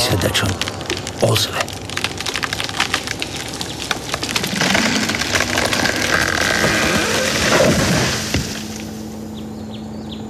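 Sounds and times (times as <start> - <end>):
wood splinters crackling: 0.0 - 9.2
speech: 0.1 - 1.8
chainsaw cutting into a very thick nearly hollow tree trunk: 2.0 - 9.1.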